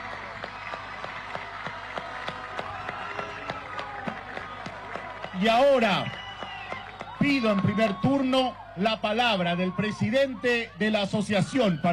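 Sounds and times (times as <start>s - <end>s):
audience applauding: 0.0s - 8.3s
speech: 5.4s - 6.2s, 7.3s - 11.9s.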